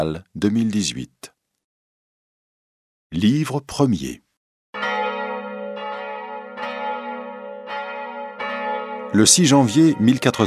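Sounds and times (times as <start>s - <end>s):
speech: 0.0s - 1.3s, 3.1s - 4.2s, 9.1s - 10.4s
church bells pealing joyfully: 4.8s - 10.4s.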